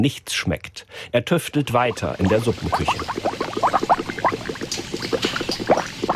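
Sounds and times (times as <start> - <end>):
speech: 0.0 - 3.7
liquid seasoning bubbling in large kettles: 1.8 - 6.1.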